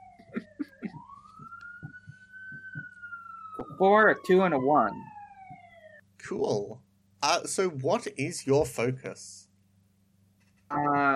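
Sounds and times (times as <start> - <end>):
ambulance siren wailing: 0.0 - 6.0
speech: 3.8 - 5.1, 6.3 - 9.4, 10.7 - 11.1.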